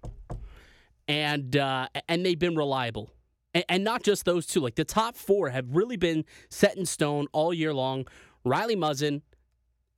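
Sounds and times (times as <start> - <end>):
knocking on wood: 0.0 - 0.5
speech: 1.1 - 9.3.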